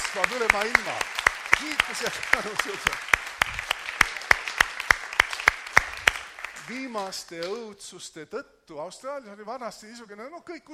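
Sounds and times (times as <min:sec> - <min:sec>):
audience clapping in a steady even rhythm: 0:00.0 - 0:07.8
speech: 0:00.2 - 0:03.6, 0:06.7 - 0:10.7.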